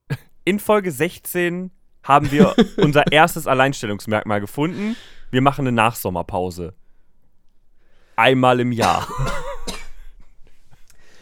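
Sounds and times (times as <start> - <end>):
speech: 0.5 - 6.8, 8.2 - 9.4
laughter: 2.2 - 3.3
ill person coughing: 8.8 - 10.2.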